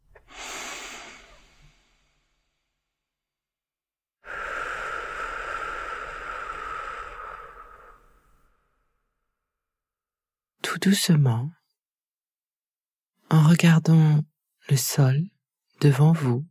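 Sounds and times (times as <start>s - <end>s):
deep breath in and out at the close of a guided meditation: 0.2s - 3.1s, 4.2s - 9.3s
speech: 10.8s - 11.6s, 13.3s - 16.4s.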